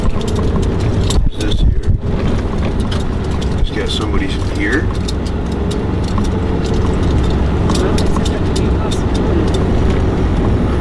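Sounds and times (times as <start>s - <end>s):
metallic clanks and knocks: 0.0s - 10.5s
heavy truck engine rumbling: 0.0s - 10.8s.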